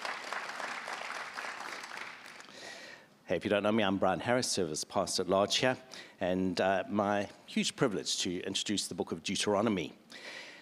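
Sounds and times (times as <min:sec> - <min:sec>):
audience applause: 0:00.0 - 0:02.5
speech: 0:03.3 - 0:10.4.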